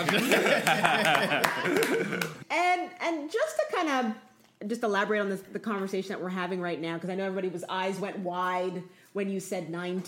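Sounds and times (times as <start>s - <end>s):
people chuckling: 0.0s - 2.4s
sharp irregular hand claps: 0.0s - 2.4s
speech: 0.0s - 10.0s.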